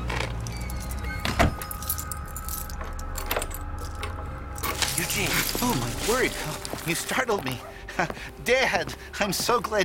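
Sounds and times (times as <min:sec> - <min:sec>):
keys jangling while locking up a building: 0:00.1 - 0:07.1
speech: 0:05.2 - 0:09.8.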